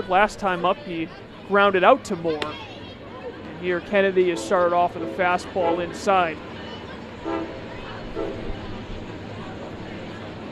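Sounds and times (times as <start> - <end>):
baseball stadium crowd noise during a game: 0.0 - 10.4
freight train rolling past behind a baseball stadium: 0.0 - 10.4
speech: 0.1 - 2.7, 3.6 - 6.5, 8.2 - 8.5
freight train horn toots: 4.2 - 6.3, 7.2 - 8.6.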